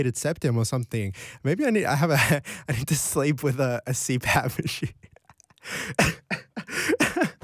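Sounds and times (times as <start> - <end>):
speech: 0.0 - 6.4
harsh raspy coughs: 5.8 - 7.4.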